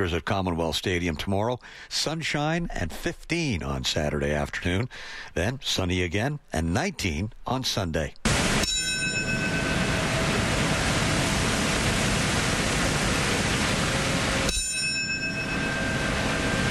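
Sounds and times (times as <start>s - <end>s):
speech: 0.0s - 8.2s
steady hiss: 0.0s - 16.6s
large memorial bell tolling: 8.6s - 11.1s, 14.5s - 16.6s.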